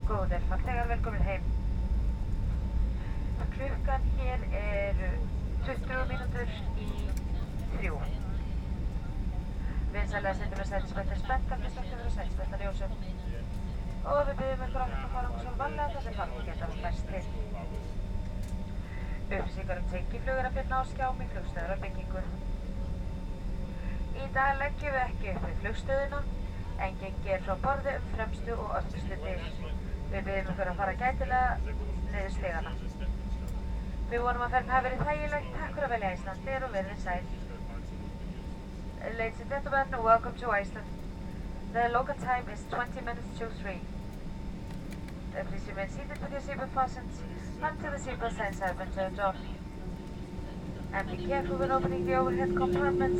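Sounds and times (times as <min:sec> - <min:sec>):
commercial jet aircraft cabin interior noise during landing: 0:00.0 - 0:53.1.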